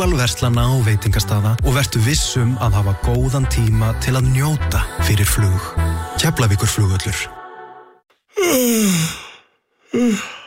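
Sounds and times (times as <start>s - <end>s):
speech: 0.0s - 7.4s, 8.4s - 9.2s, 10.0s - 10.4s
human yawn gliding down into a breathy exhale: 8.3s - 10.4s.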